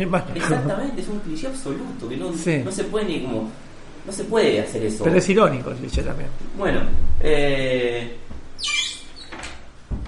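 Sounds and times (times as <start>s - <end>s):
speech: 0.0s - 8.8s
door creaking: 8.2s - 10.0s.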